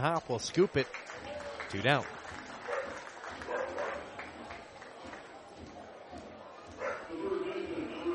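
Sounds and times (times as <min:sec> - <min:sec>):
speech: 0:00.0 - 0:02.2
murmur of a large crowd: 0:01.0 - 0:08.1
dog barking excitedly: 0:02.7 - 0:04.1, 0:06.8 - 0:07.1.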